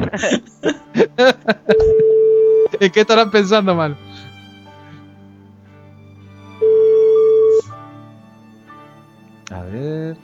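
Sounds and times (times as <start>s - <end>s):
laughter: 0.0s - 2.1s
speech: 0.1s - 4.2s
steady electronic ringback tone of an unanswered phone call: 1.8s - 2.7s, 6.6s - 7.7s.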